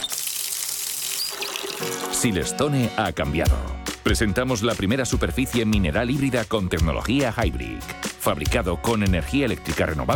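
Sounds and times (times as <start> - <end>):
water running from a tap into a sink: 0.0 - 2.4
speech: 1.8 - 10.1.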